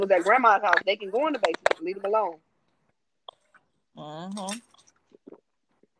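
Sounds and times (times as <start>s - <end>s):
speech: 0.0s - 2.5s, 4.0s - 4.7s
big gulps of wine being swallowed: 3.2s - 5.9s.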